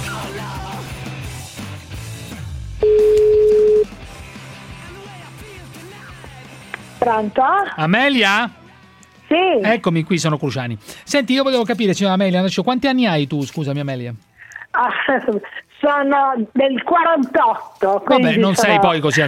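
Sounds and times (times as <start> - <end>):
telephone ringing while a call is placed: 2.8 - 3.9
speech: 7.1 - 8.6, 9.3 - 19.2.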